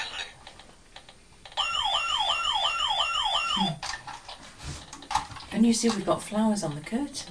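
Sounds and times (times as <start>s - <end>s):
ambulance siren passing: 1.6s - 3.8s
speech: 5.6s - 7.2s.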